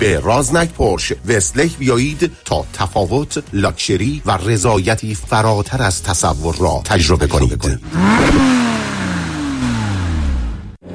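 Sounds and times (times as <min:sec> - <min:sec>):
speech: 0:00.0 - 0:08.7
speeding car engine roaring: 0:06.9 - 0:10.9.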